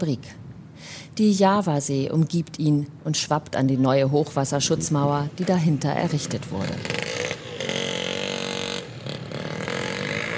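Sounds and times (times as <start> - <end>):
speech: 0.0 - 7.3
moped engine droning on the crest of a flood protection wall by the Java Sea: 4.8 - 10.3.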